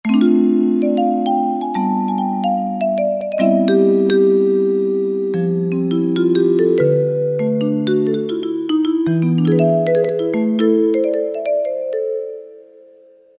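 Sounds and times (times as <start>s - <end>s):
vibe on Roland MT-32: 0.0s - 13.3s.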